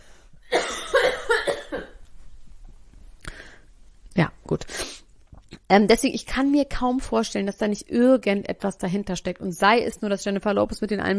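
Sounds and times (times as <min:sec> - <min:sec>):
loud coughing: 0:00.5 - 0:02.0
speech: 0:05.7 - 0:11.1.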